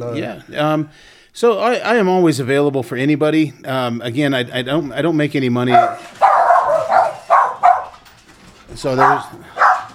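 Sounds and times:
speech: 0.0s - 6.2s, 8.8s - 9.6s
dogs barking: 5.7s - 8.1s, 8.9s - 9.9s.

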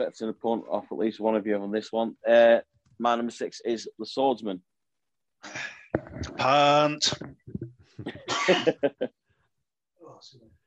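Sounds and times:
speech: 0.0s - 4.7s, 6.4s - 9.2s
fit of harsh raspy coughing: 8.0s - 8.8s.

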